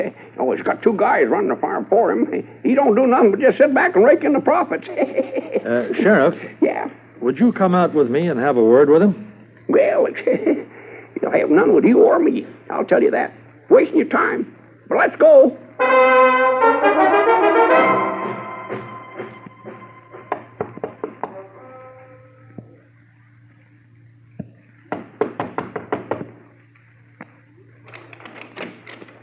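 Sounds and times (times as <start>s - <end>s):
speech: 0.0s - 16.7s
steady low hum: 0.0s - 25.2s
laughter: 4.6s - 6.4s
loud sustained tone: 15.8s - 20.8s
insistent knocking on a door: 20.3s - 21.4s, 24.9s - 26.3s.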